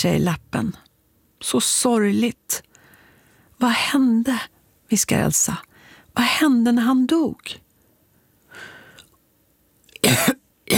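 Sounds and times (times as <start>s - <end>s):
speech: 0.0s - 2.7s, 3.6s - 7.6s
faint breathy inhale: 2.8s - 3.5s, 5.7s - 6.1s, 8.5s - 9.2s
rattling phlegmy cough: 10.0s - 10.7s.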